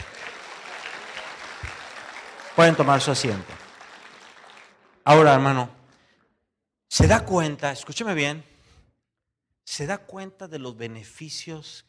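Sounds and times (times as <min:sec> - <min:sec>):
audience applauding: 0:00.0 - 0:05.7
speech: 0:02.6 - 0:03.6, 0:05.0 - 0:05.8, 0:06.9 - 0:08.5, 0:09.7 - 0:11.8.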